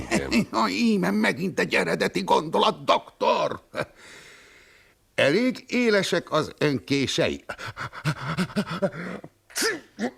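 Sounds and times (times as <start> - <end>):
speech: 0.2 - 4.2, 5.2 - 10.1
person acting out a sneeze: 9.5 - 10.1.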